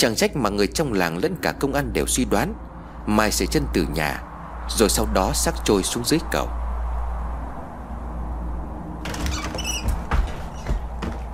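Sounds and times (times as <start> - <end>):
speech: 0.0 - 6.6
wind rushing on a village house's veranda: 0.7 - 11.3
thin squeaks of a window shutter: 9.0 - 11.3
window shutter on a village house's veranda knocking against the wall in the wind: 9.0 - 11.3.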